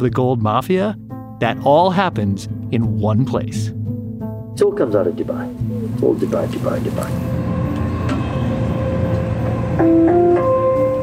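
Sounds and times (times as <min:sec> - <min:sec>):
speech: 0:00.0 - 0:03.8, 0:04.6 - 0:07.4, 0:09.8 - 0:10.2
metro train in Dubai heading south rumbling along the track: 0:06.0 - 0:11.0
metro train motor whine: 0:06.9 - 0:10.0.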